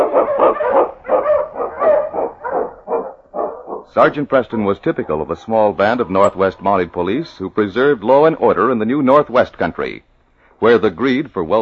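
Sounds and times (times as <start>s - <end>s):
pack of husky sled dogs barking and yelping: 0.0s - 6.8s
speech: 4.0s - 11.6s.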